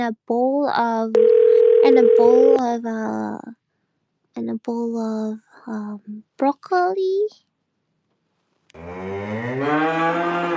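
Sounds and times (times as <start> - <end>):
speech: 0.0 - 3.6, 4.4 - 7.5, 8.8 - 10.5
cow mooing: 8.8 - 10.5.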